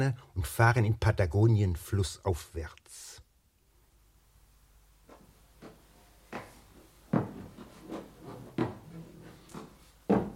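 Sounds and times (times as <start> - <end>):
speech: 0.0 - 3.2
old wooden stairs creaking and knocking: 5.6 - 10.3.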